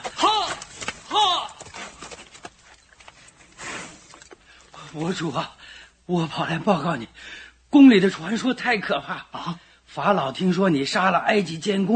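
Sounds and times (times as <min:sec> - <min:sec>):
horse hooves galloping away with rider: 0:00.0 - 0:04.4
speech: 0:05.0 - 0:11.9.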